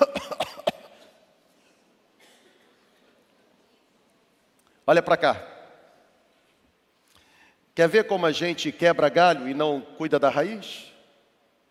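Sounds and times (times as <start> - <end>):
person coughing in harsh bursts: 0.0 - 2.9
speech: 4.9 - 5.5, 7.8 - 10.9.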